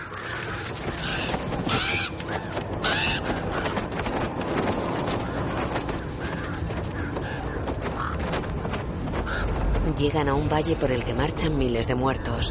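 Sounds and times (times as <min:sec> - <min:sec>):
crows cawing while flying over ice and frozen mountains: 0:00.0 - 0:09.8
dense rumbling noise with creaking tones: 0:00.0 - 0:12.4
speech: 0:10.0 - 0:12.4.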